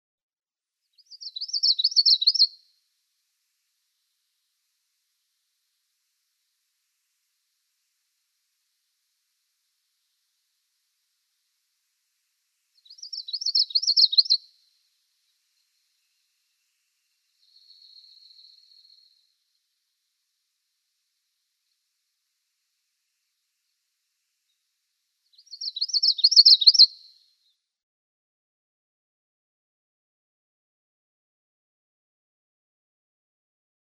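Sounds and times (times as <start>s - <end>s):
Common Yellowthroat song: 0.8s - 2.7s, 12.8s - 19.8s, 23.2s - 27.7s.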